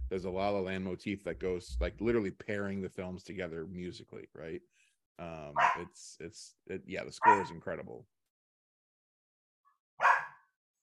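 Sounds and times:
speech: 0.1 - 8.2
dog barking: 5.6 - 5.9, 7.2 - 7.6, 10.0 - 10.4.

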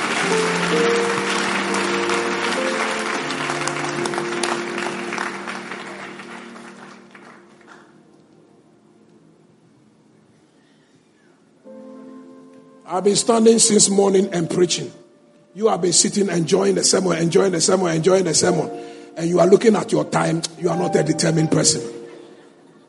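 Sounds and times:
congregation clapping: 0.0 - 8.3
sustained organ-like chords: 0.0 - 10.1, 11.4 - 22.8
speech: 13.0 - 15.0, 15.6 - 22.0.

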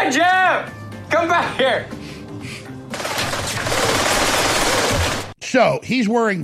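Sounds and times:
speech: 1.2 - 2.0, 5.5 - 6.4
rapid gunfire from a VR shooting game: 2.9 - 5.4.

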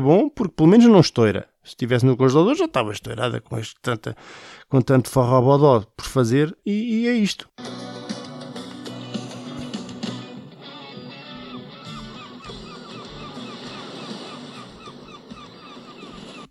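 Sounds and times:
speech: 0.0 - 7.8
seagulls calling: 8.9 - 16.4.

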